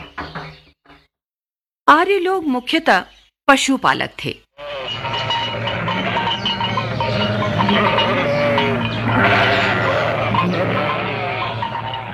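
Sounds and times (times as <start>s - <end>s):
speech: 2.0s - 4.4s, 7.7s - 8.0s
large flock of sheep and goats bleating: 4.6s - 12.1s.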